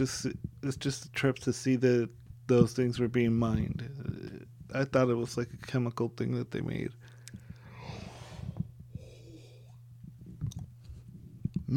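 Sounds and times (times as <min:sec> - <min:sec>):
speech: 0:00.0 - 0:07.1
steady low hum: 0:00.0 - 0:11.7
person yawning with a wheezy intake and falling sigh: 0:07.7 - 0:09.8.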